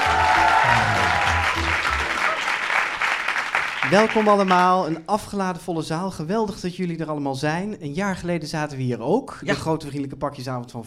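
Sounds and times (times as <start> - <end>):
packed theater audience applauding: 0.0 - 5.0
speech: 3.9 - 10.8.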